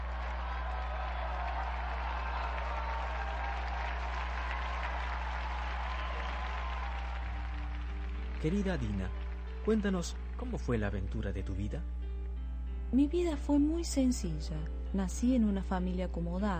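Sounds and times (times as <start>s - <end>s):
audience applauding: 0.0s - 11.4s
speech: 8.4s - 12.0s, 12.9s - 16.5s.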